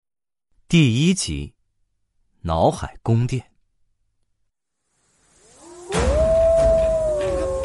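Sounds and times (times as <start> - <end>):
speech: 0.7 - 1.6, 2.4 - 3.5
wolves howling: 5.5 - 7.6.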